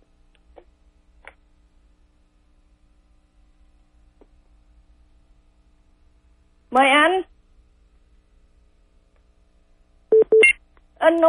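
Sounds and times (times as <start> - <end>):
speech: 6.8 - 7.3
telephone busy signal: 10.1 - 10.5.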